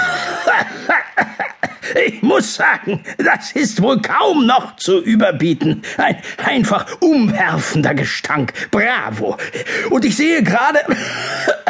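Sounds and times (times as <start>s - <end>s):
person coughing harshly: 0.0s - 2.2s, 10.9s - 11.6s
laughter: 0.0s - 3.0s
speech: 0.5s - 0.9s, 1.9s - 11.6s.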